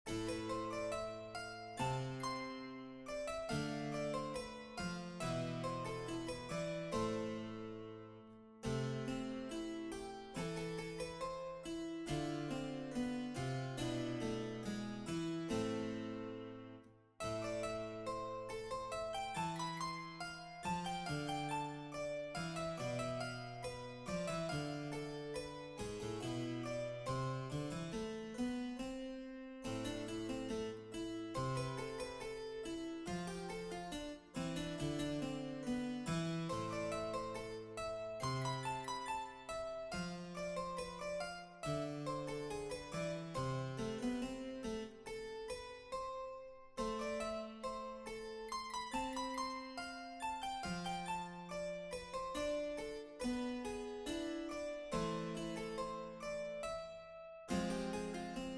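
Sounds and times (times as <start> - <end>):
solo harpsichord fugue: 0.0 - 58.5.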